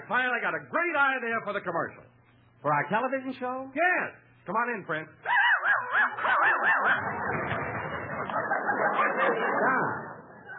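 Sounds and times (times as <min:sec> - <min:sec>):
speech: 0:00.1 - 0:05.4
dog whimpering and yelping: 0:05.3 - 0:07.2
laughter: 0:05.5 - 0:10.5.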